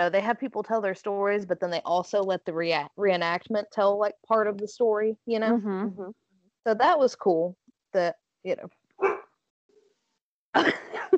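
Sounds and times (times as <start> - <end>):
speech: 0.0 - 8.8, 10.6 - 10.8
dog yelping: 9.0 - 9.2
dog barking: 9.0 - 9.3.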